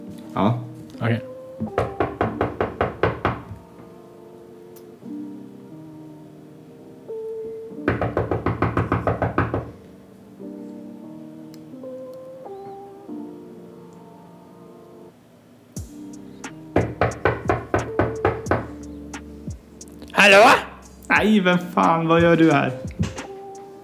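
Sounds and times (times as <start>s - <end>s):
speech: 0.4s - 1.9s, 21.2s - 22.9s
knocking on the door of a home: 1.6s - 3.6s, 7.9s - 9.8s, 16.8s - 18.7s, 22.9s - 23.2s.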